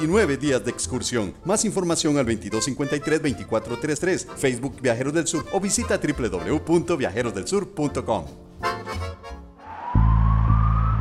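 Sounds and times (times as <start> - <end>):
speech: 0.0 - 9.3
ambulance siren: 9.6 - 10.9.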